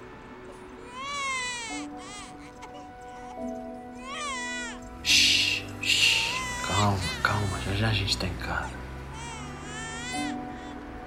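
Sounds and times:
one-year-old baby boy crying at home: 0.7s - 11.0s
speech: 6.8s - 8.8s.

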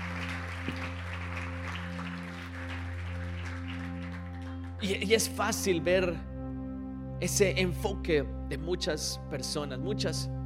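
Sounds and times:
crowd clapping: 0.0s - 5.0s
speech: 4.8s - 6.3s, 7.2s - 10.4s.

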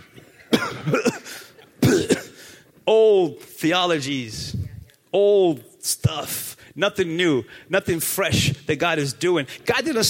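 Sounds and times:
person coughing: 0.1s - 2.5s
speech: 0.8s - 1.2s, 2.9s - 4.4s, 5.1s - 10.0s.

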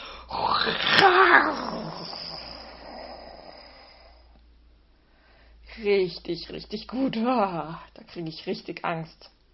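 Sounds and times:
person imitating a lion's roar: 0.3s - 4.2s
speech: 0.7s - 1.7s, 5.8s - 9.4s.

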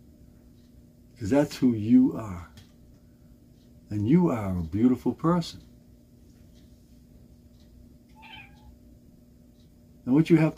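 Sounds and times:
low hum: 0.0s - 10.5s
speech: 1.2s - 2.6s, 3.9s - 5.7s, 10.1s - 10.5s
house cat meowing: 8.1s - 8.8s.

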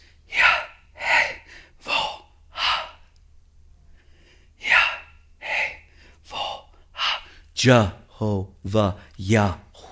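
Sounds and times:
voice making breathy inhale and exhale sounds: 0.0s - 3.1s, 4.6s - 7.4s
speech: 7.6s - 9.6s.

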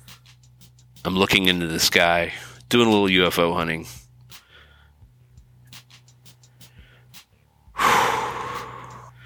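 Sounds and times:
speech: 1.0s - 4.0s
short breath puffs: 4.3s - 4.9s, 6.4s - 9.2s
deep exhale during a counted box-breathing exercise in a backyard: 7.8s - 9.2s.

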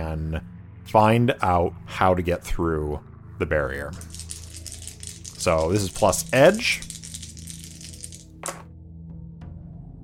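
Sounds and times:
speech: 0.1s - 4.3s, 5.4s - 6.9s
action die and two challenge dice rattling: 3.9s - 8.7s.

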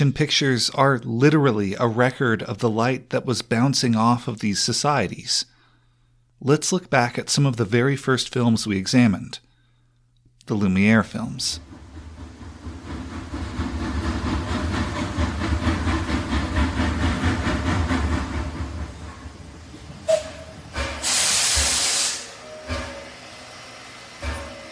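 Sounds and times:
speech: 0.0s - 5.5s, 6.4s - 9.4s, 10.5s - 11.7s
steam locomotive train arriving at a station chugging: 11.2s - 24.6s
hissing steam from a steam locomotive: 12.7s - 24.6s
short metallic clanks: 24.2s - 24.6s.

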